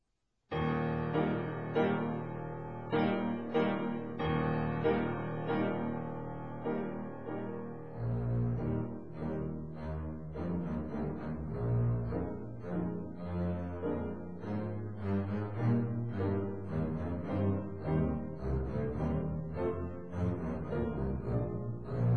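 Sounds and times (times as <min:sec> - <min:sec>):
double bass: 0:01.1 - 0:22.1.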